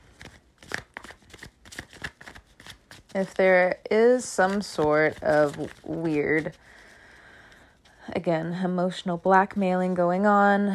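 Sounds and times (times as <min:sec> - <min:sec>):
deck of tarot cards being shuffled: 0:00.0 - 0:03.4, 0:04.1 - 0:06.9
speech: 0:03.1 - 0:06.6, 0:08.2 - 0:10.7.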